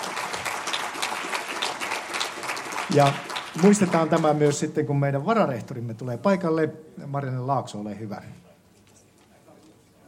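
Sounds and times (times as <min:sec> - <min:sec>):
standing audience applauding a school principal's speech: 0:00.0 - 0:04.7
speech: 0:02.9 - 0:08.4.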